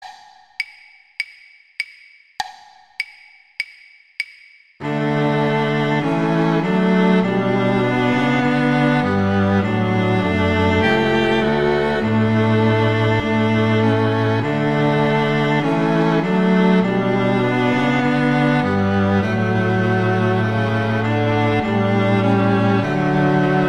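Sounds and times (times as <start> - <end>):
first violin in a quartet: 4.8 - 23.6.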